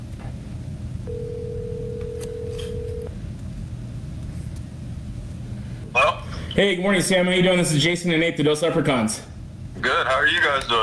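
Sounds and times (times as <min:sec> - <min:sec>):
phone line ringing on an outgoing call: 0:01.1 - 0:03.1
speech: 0:06.6 - 0:10.8.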